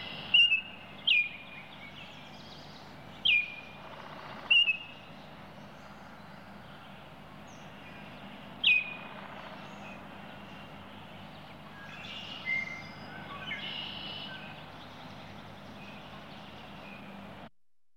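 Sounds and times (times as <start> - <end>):
Baltimore oriole whistled calls: 0.0 - 2.0, 3.2 - 5.1, 8.6 - 10.0, 11.7 - 14.6
low background hum: 0.0 - 17.5.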